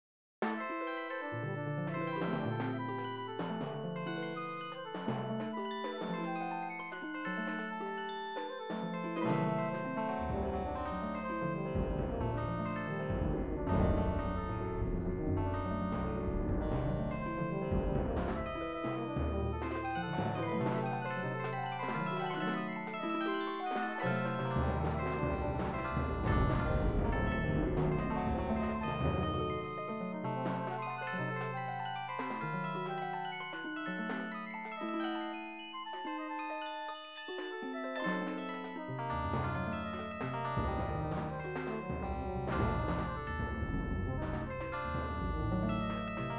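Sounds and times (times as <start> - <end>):
minor chords and diminished seventh chords: 0.6 - 46.3.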